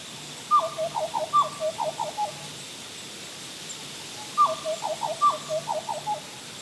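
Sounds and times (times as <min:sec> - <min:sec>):
quiet hiss: 0:00.0 - 0:06.6
black butcherbird singing: 0:00.5 - 0:02.5, 0:03.7 - 0:06.6.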